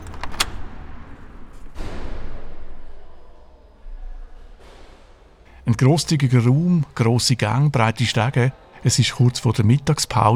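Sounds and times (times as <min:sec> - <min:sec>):
door latch click: 0:00.0 - 0:01.3
door swinging open: 0:00.0 - 0:02.2
speech: 0:05.7 - 0:10.3.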